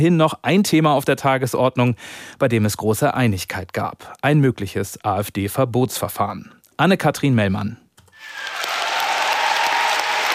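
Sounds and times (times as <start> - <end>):
speech: 0.0 - 7.8
party delegates cheering at a party congress: 8.2 - 10.3.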